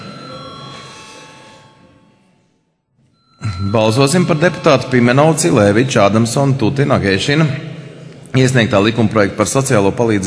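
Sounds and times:
electric bell ringing in the Latvian parliament chamber to call members to a vote: 0:00.0 - 0:02.3, 0:03.1 - 0:06.6
speech: 0:03.6 - 0:07.7, 0:08.3 - 0:10.2.

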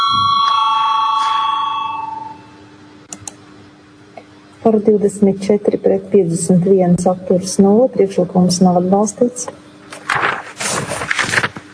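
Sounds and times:
bell rung to call a vote in a parliamentary session: 0:00.0 - 0:02.6
speech: 0:04.7 - 0:09.6.

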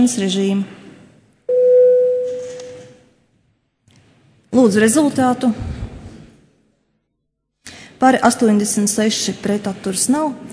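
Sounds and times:
speech: 0:00.0 - 0:00.8, 0:04.5 - 0:05.8, 0:08.0 - 0:10.5
parliamentary voting bell steady electronic tone: 0:01.5 - 0:03.0.

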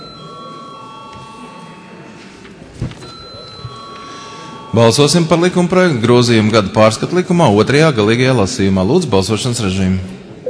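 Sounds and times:
electric bell ringing in a parliamentary chamber before a vote: 0:00.0 - 0:02.0, 0:03.0 - 0:05.5
speech: 0:04.7 - 0:10.2.

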